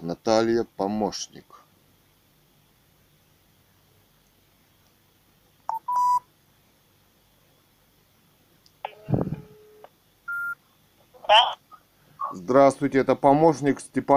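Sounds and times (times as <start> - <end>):
speech: 0.2 - 1.5, 12.3 - 14.1
telephone keypad tones: 8.9 - 10.6.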